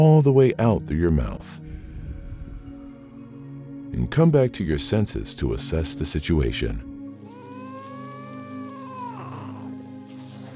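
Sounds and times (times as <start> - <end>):
speech: 0.0 - 1.8, 3.9 - 6.9
angry cat yowling: 7.3 - 10.5.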